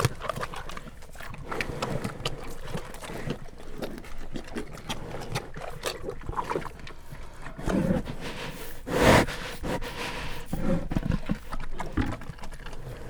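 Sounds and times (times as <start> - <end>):
captive brown bears eating at a zoo in Jászberény Hungary: 0.0 - 13.0
brown bear snuffling exhale: 6.6 - 13.0.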